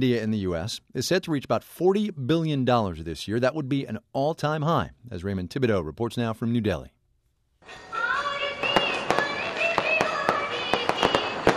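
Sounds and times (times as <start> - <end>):
speech: 0.0 - 7.0, 7.6 - 7.9
firecrackers popping for Diwali in New Delhi India: 7.7 - 11.5.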